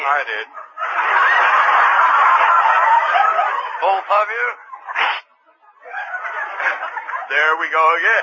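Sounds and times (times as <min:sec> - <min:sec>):
laughter: 0:00.0 - 0:08.2
speech: 0:00.1 - 0:01.2, 0:03.8 - 0:05.2, 0:07.3 - 0:08.2
person sneezing: 0:04.9 - 0:05.3.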